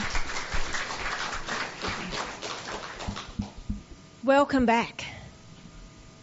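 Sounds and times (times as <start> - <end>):
audience applauding for children: 0.0 - 3.8
speech: 4.3 - 5.0.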